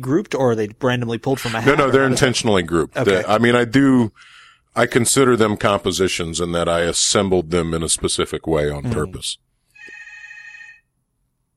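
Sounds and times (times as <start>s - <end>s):
speech: 0.0s - 10.0s
hotel room telephone ringing with an electronic trill: 9.7s - 10.9s.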